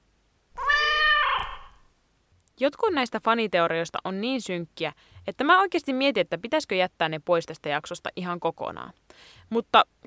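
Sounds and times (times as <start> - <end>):
cat meowing: 0.6 - 1.9
speech: 2.6 - 10.0.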